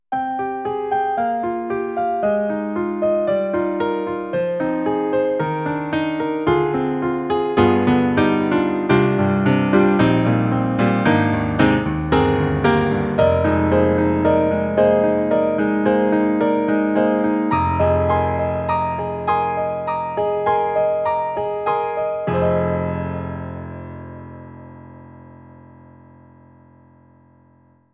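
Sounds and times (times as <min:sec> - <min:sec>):
contemporary rock piano on an EDIROL SD-90: 0:00.1 - 0:27.8.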